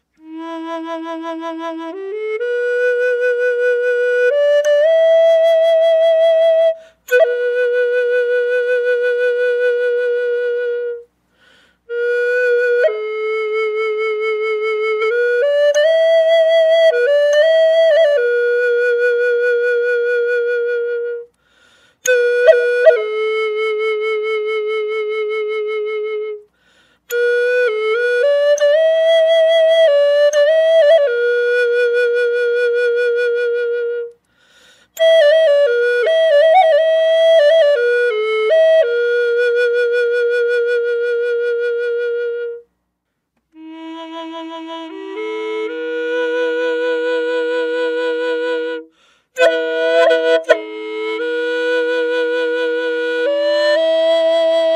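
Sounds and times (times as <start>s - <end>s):
flute drone on E without effects: 0.0s - 11.1s, 11.9s - 21.4s, 22.0s - 26.5s, 27.1s - 34.2s, 34.9s - 42.7s, 43.5s - 54.7s.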